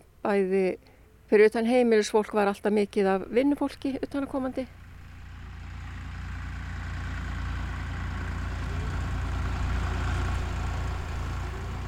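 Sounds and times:
speech: 0:00.2 - 0:04.8
tractor engine idling on a farm: 0:03.2 - 0:11.8.

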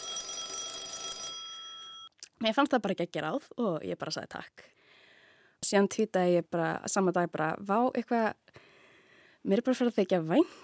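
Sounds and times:
alarm clock ringing with a bright electronic tone: 0:00.0 - 0:02.1
speech: 0:02.4 - 0:04.8, 0:05.6 - 0:08.7, 0:09.4 - 0:10.6.

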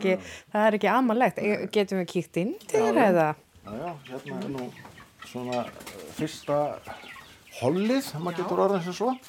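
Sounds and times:
speech: 0:00.0 - 0:09.2
young hens clucking and chirping: 0:02.5 - 0:09.2.

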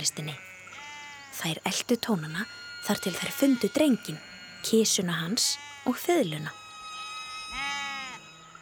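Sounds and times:
speech: 0:00.0 - 0:00.5, 0:01.4 - 0:06.6
sheep bleating: 0:00.0 - 0:01.5, 0:03.0 - 0:06.5, 0:07.5 - 0:08.3
steady hiss: 0:00.0 - 0:08.6.

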